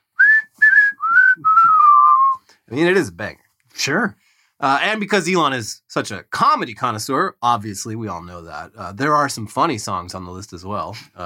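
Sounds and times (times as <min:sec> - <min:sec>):
whistled melody: 0:00.1 - 0:02.4
speech: 0:02.7 - 0:11.2.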